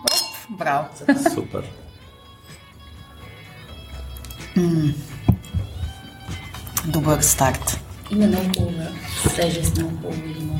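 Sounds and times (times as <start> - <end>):
wine glasses clinking in a toast: 0.0 - 0.9
speech: 0.5 - 1.8, 4.6 - 5.1, 6.9 - 10.5.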